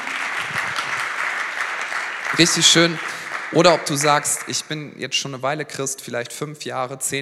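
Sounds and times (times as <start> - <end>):
crowd applauding: 0.0 - 4.9
speech: 2.3 - 7.2.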